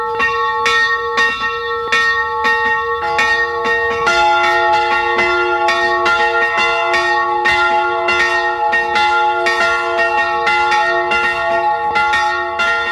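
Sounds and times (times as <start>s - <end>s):
church bells pealing at noon from a small baroque branch church in Carinthia, Austria: 0.0s - 12.9s.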